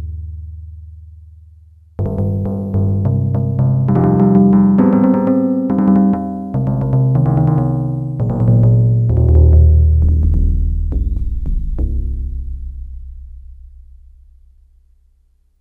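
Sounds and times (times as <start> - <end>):
timpani factory patch on a Yamaha DX100 synthesizer: 2.0 - 13.1.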